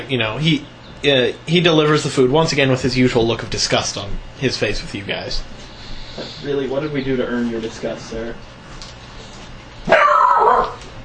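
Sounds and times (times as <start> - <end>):
speech: 0.0 - 5.6, 6.2 - 8.5
dog barking: 9.9 - 10.8.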